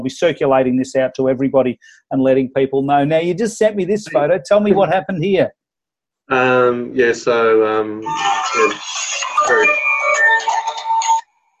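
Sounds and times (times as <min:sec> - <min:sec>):
speech: 0:00.0 - 0:05.6, 0:06.3 - 0:10.5
phone ringtone with a busy melodic tune: 0:08.0 - 0:11.4.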